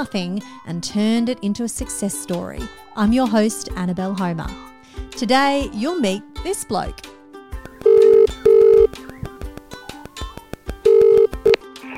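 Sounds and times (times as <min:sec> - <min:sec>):
speech: 0:00.0 - 0:07.1
faint rhythmic tapping: 0:07.6 - 0:11.6
telephone ringing before voicemail greeting: 0:07.8 - 0:09.1, 0:10.8 - 0:11.6.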